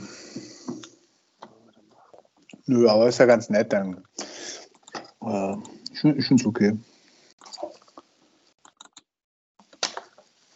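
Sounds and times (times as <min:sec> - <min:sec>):
speech: 0:02.7 - 0:04.1, 0:05.2 - 0:06.9
computer mouse clicking: 0:08.6 - 0:09.0.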